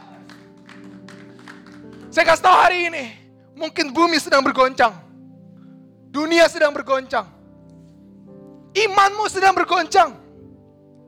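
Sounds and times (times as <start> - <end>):
crowd applauding: 0.0 - 2.2
speech: 2.1 - 5.0, 6.1 - 7.4, 8.7 - 10.2.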